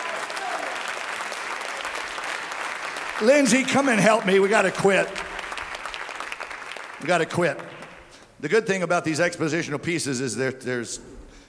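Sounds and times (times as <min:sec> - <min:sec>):
congregation clapping hands: 0:00.0 - 0:08.4
speech: 0:03.2 - 0:05.3, 0:07.0 - 0:07.8, 0:08.4 - 0:11.4.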